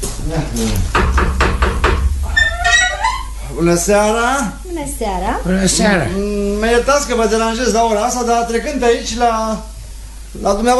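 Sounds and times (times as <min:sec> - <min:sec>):
low rumble: 0:00.0 - 0:10.4
speech: 0:00.3 - 0:01.1, 0:03.6 - 0:09.7, 0:10.3 - 0:10.7
knocks on a door: 0:00.9 - 0:02.9.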